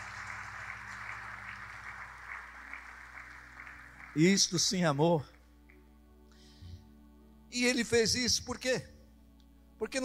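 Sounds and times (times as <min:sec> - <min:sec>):
large crowd applauding: 0:00.0 - 0:05.2
speech: 0:04.2 - 0:05.3, 0:07.6 - 0:09.0, 0:09.8 - 0:10.0.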